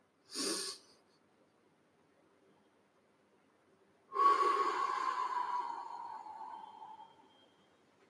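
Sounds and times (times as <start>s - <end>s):
slow breathing in through the nostrils: 4.1s - 7.4s.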